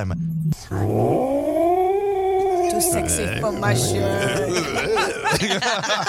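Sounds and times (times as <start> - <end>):
speech: 0.0 - 1.4, 2.8 - 6.0
person imitating an irritated British Shorthair tomcat meowing: 1.8 - 5.0
laughter: 2.9 - 6.0.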